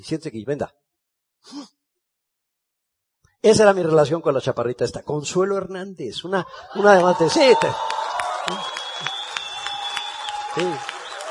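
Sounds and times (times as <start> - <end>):
speech: 0.0 - 0.8, 1.4 - 1.8, 3.4 - 9.1, 10.6 - 10.9
audience applauding: 6.7 - 11.2.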